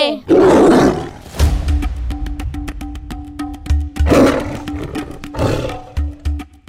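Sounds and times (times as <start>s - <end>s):
tiger roaring: 0.3s - 1.3s, 4.0s - 6.2s
rhythmic percussion beat: 1.4s - 6.6s.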